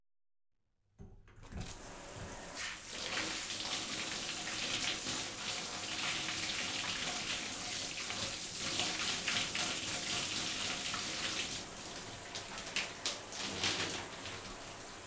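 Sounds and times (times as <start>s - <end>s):
shower spraying onto a reclining person's hair: 1.6s - 15.0s.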